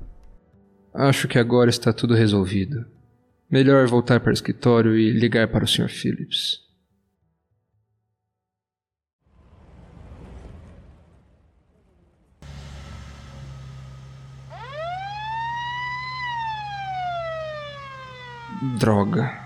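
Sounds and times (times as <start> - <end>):
speech: 1.0 - 6.6, 18.6 - 19.4
rumble of vehicle noise: 9.3 - 18.5
police car siren wailing: 12.5 - 19.4.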